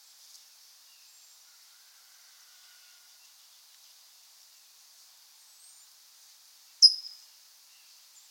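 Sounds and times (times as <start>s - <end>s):
faint background noise: 0.0s - 8.2s
California towhee Melozone crissalis chip call: 6.8s - 7.2s.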